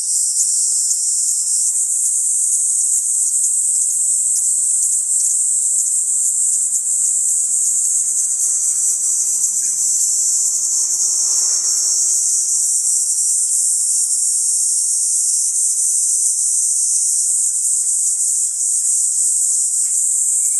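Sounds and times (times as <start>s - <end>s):
Kaempfer cicada giving constant intense high whine: 0.0s - 20.5s.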